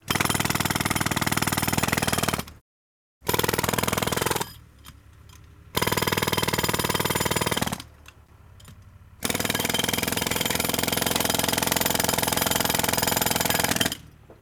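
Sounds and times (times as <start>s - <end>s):
jackhammer: 0.0s - 2.5s, 3.2s - 4.6s, 5.7s - 7.8s, 9.2s - 14.1s.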